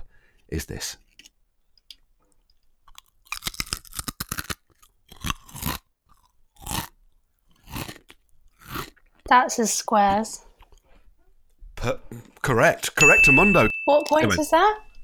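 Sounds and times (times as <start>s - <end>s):
speech: 0.5s - 1.0s, 9.3s - 10.5s, 11.8s - 14.9s
crunching a square-shaped crisp in the mouth: 2.9s - 9.1s.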